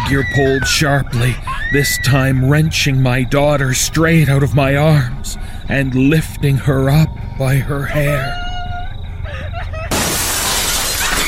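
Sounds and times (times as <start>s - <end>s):
low hum: 0.0s - 11.0s
speech: 0.1s - 8.4s
faint tonal sounds: 2.4s - 9.7s
glass shattering: 9.9s - 11.2s.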